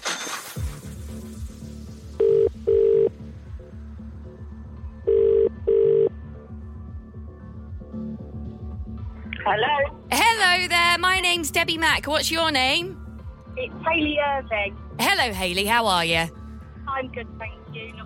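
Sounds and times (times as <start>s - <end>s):
telephone ringback tone heard down the line: 2.2s - 3.1s, 5.1s - 6.1s
speech: 9.5s - 10.0s, 10.6s - 13.0s, 13.6s - 16.4s, 17.0s - 18.0s.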